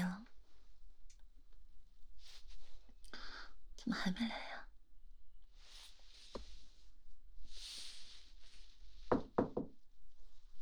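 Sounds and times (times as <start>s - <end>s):
speech: 3.8s - 4.5s
knocking on a door: 9.1s - 9.8s.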